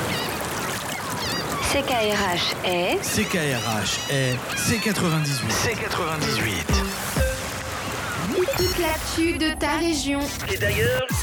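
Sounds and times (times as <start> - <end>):
birds calling at sunrise: 0.0 - 8.9
speech: 1.7 - 7.2, 8.4 - 11.2.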